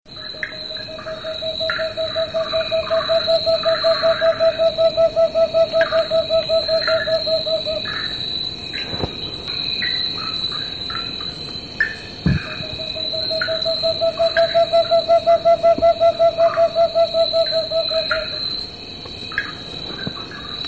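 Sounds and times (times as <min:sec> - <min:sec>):
Cinnamon Screech-Owl calling in South America: 0:00.2 - 0:08.2, 0:12.3 - 0:18.5.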